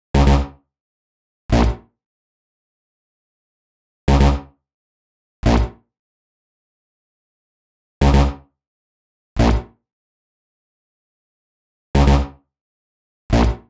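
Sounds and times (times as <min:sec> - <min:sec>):
B-sharp minor synth bass: 0:00.2 - 0:00.5, 0:01.5 - 0:01.8, 0:04.1 - 0:04.4, 0:05.4 - 0:05.7, 0:08.0 - 0:08.3, 0:09.4 - 0:09.6, 0:12.0 - 0:12.3, 0:13.3 - 0:13.6.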